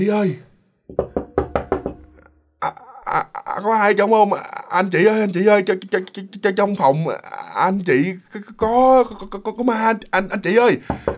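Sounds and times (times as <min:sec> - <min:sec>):
speech: 0:00.0 - 0:01.1, 0:02.6 - 0:11.1
knocking on a hotel room door: 0:00.9 - 0:02.2, 0:10.9 - 0:11.1.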